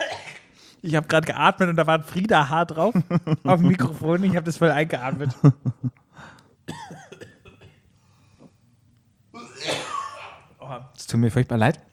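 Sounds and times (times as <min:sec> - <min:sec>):
person coughing close to the microphone: 0:00.0 - 0:00.5, 0:06.7 - 0:07.8, 0:09.4 - 0:10.5
speech: 0:00.8 - 0:06.9, 0:10.7 - 0:11.9.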